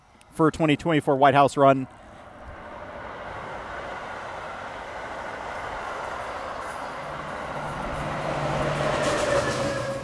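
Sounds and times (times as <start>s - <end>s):
speech: 0.4s - 2.0s
metro train wheels rumbling on rails: 2.3s - 10.0s
thin metallic whine of a metro train: 5.1s - 10.0s.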